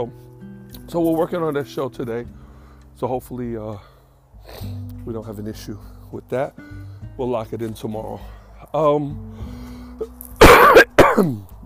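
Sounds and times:
speech: 0.0s - 0.3s, 0.9s - 2.4s, 3.0s - 9.5s, 11.2s - 11.5s
person coughing: 10.0s - 11.4s.

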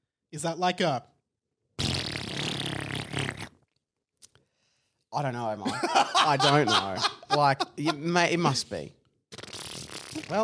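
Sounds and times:
speech: 0.3s - 1.1s, 5.2s - 9.0s, 10.2s - 10.4s
loud drawn-out buzzy fart: 1.8s - 3.7s, 9.3s - 10.4s
laughter: 5.6s - 8.6s.

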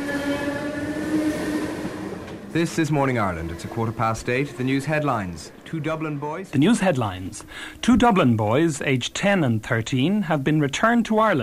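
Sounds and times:
rumble from inside a moving train: 0.0s - 7.2s
speech: 2.6s - 11.4s.

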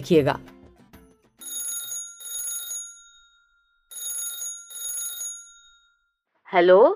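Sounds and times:
speech: 0.0s - 0.5s, 6.5s - 6.9s
telephone ringing with buzzing trills: 1.4s - 6.2s.

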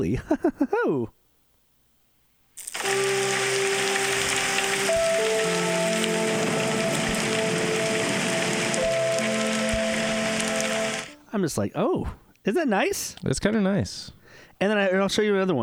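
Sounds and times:
speech: 0.0s - 1.2s, 11.3s - 15.6s
steady loud rain: 2.6s - 11.2s
sustained melodic tones drifting between pitches: 2.8s - 11.3s.

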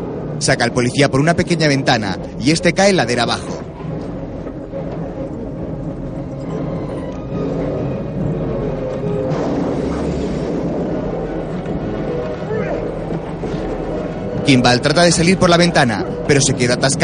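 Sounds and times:
train approaching a bus stuck in its path: 0.0s - 17.0s
speech: 0.4s - 3.7s, 14.5s - 17.0s.

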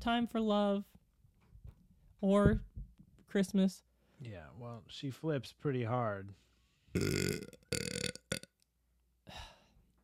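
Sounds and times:
speech: 0.0s - 1.0s, 2.2s - 2.7s, 3.3s - 7.6s
person burping after drinking soda: 7.0s - 8.5s.

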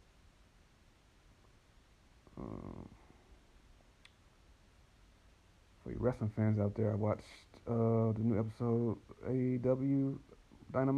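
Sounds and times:
low room noise: 0.0s - 10.9s
person yawning: 2.3s - 3.0s
speech: 5.9s - 10.9s.

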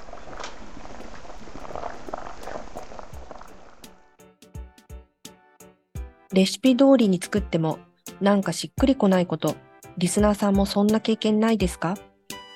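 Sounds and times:
pot at a rolling boil bubbling: 0.0s - 4.2s
speech: 6.3s - 12.1s.

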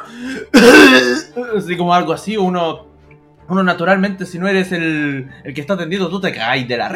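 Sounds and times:
person vocally mimicking a woman's violent coughing: 0.2s - 1.3s
speech: 1.6s - 2.9s, 3.5s - 6.9s.

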